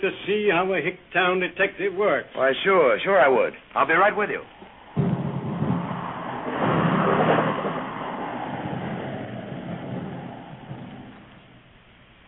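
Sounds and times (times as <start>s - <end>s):
speech: 0.0s - 4.6s
steady rain hiss: 0.0s - 12.2s
car engine rumbling while driving in the rain: 4.1s - 12.2s.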